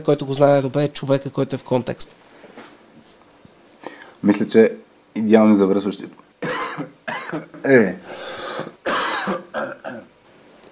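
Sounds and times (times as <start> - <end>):
speech: 0.0 - 2.3, 4.2 - 6.2, 6.8 - 8.7
person coughing: 6.4 - 7.7, 8.4 - 10.1.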